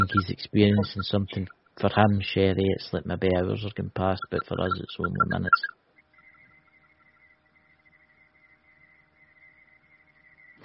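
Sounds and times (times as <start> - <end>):
steady high-pitched electronic tone: 0.0 - 1.1, 4.2 - 10.6
speech: 0.0 - 5.8
faint low hum: 0.0 - 10.6.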